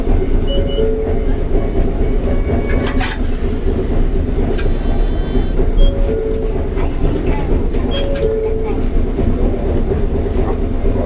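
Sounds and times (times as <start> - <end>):
tram running with steady dense low rumble: 0.0 - 11.0
sharp rail clatters: 0.1 - 11.0
brief two-note tones: 0.5 - 1.5, 5.8 - 7.1, 7.8 - 8.9.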